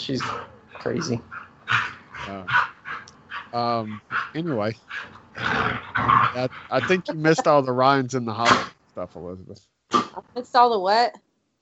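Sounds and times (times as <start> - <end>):
speech: 0.0 - 2.7, 3.5 - 11.3
dog barking and whimpering: 0.0 - 4.3
laughter: 0.9 - 1.2, 3.6 - 4.7, 6.4 - 9.6.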